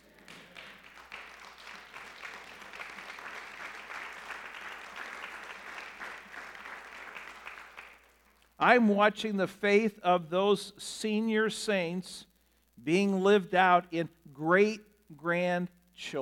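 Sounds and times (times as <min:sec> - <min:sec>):
large crowd applauding in a reverberant room: 0:00.0 - 0:08.2
speech: 0:08.6 - 0:16.2.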